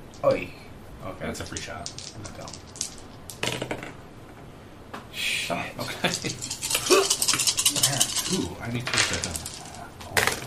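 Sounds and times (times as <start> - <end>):
speech: 0.2 - 2.8, 3.4 - 3.9, 5.2 - 9.6
many dice rolled during a tabletop role-playing game session: 1.4 - 4.0, 6.0 - 10.4.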